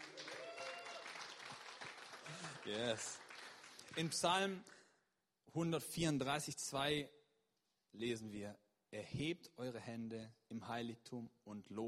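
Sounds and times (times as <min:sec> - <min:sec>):
audience clapping at a worship gathering: 0:00.0 - 0:04.6
speech: 0:02.3 - 0:03.2, 0:04.0 - 0:04.8, 0:05.5 - 0:07.2, 0:07.9 - 0:11.8.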